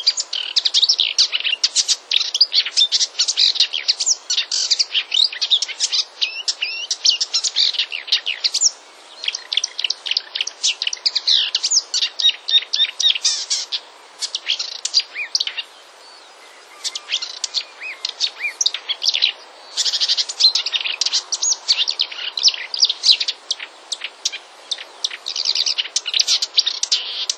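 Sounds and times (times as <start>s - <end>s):
marsh warbler song: 0.0s - 27.3s.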